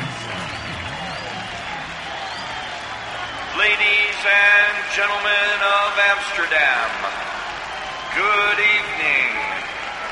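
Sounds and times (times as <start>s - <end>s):
large concert crowd clapping: 0.0s - 10.1s
whistles from a concert audience waiting for a show: 0.3s - 3.4s
speech: 3.6s - 7.3s, 8.2s - 9.7s.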